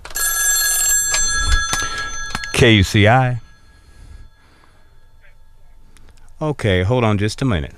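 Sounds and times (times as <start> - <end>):
telephone ringing with an electronic trill: 0.0 - 6.0
speech: 2.6 - 3.4, 6.4 - 7.7.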